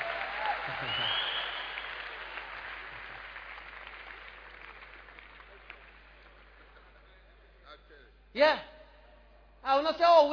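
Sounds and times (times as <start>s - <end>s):
crowd applauding: 0.0s - 7.6s
speech: 0.8s - 1.2s, 8.4s - 8.7s, 9.7s - 10.3s.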